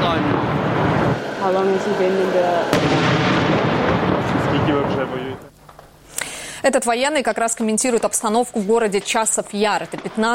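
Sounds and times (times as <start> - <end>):
heavy booms and low roaring artillery explosions in Chasiv Yar: 0.0 - 5.4, 7.8 - 10.3
sharp artillery blast in the town of Chasiv Yar: 0.0 - 5.5
speech: 1.4 - 3.3, 4.2 - 5.5, 6.6 - 10.3.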